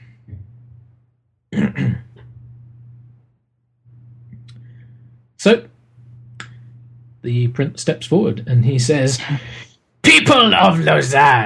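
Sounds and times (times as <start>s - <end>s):
faint steady low hum: 0.0s - 11.4s
throat clearing: 1.5s - 2.4s
speech: 5.4s - 5.7s, 7.2s - 11.4s.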